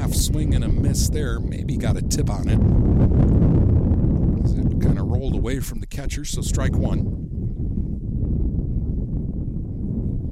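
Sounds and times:
wind buffeting the microphone: 0.0s - 10.3s
speech: 0.2s - 3.7s, 5.4s - 7.4s.

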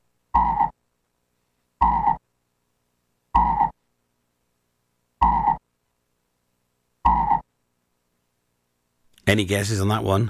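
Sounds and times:
frog croaking with short loud rasping calls: 0.3s - 0.8s, 1.8s - 2.2s, 3.4s - 3.8s, 5.2s - 5.7s, 7.0s - 7.5s
speech: 9.3s - 10.2s.

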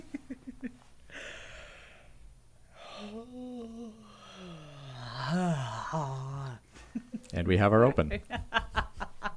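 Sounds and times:
sharp inhale: 1.1s - 5.5s
person yawning into a groaning moan: 2.7s - 6.6s
speech: 7.4s - 8.4s.

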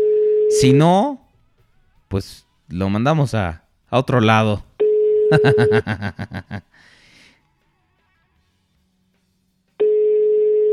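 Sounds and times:
telephone line tone on an unanswered outgoing call: 0.0s - 0.8s, 4.8s - 5.7s, 9.8s - 10.7s
speech: 0.6s - 1.2s, 2.1s - 4.7s, 5.3s - 6.9s
laughter: 5.3s - 6.7s.

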